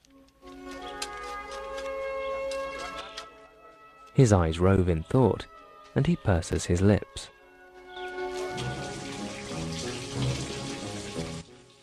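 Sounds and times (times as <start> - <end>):
speech: 4.2 - 7.4
water dripping and trickling from the ceiling of a dark mine tunnel: 8.1 - 11.8.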